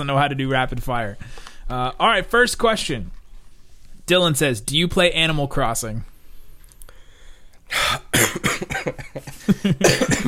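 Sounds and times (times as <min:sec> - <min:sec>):
speech: 0:00.0 - 0:03.2, 0:04.1 - 0:06.1, 0:08.2 - 0:10.2
harsh coughing fit: 0:07.7 - 0:10.2.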